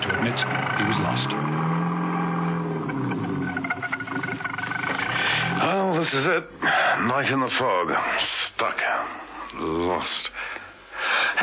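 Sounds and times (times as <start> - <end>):
car engine rumbling as the vehicle crawls through thick fog: 0.0 - 6.0
speech: 6.1 - 10.5.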